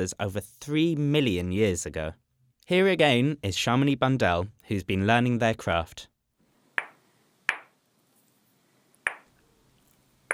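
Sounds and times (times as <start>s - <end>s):
speech: 0.0s - 6.1s
hammerstone striking a lava block in stone knapping: 6.8s - 7.7s, 9.1s - 9.3s.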